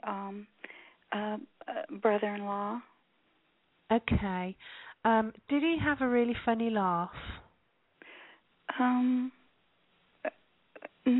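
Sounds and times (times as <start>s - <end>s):
speech: 0.0s - 2.9s, 3.9s - 7.4s, 8.7s - 9.4s
person hiccuping: 10.2s - 11.1s.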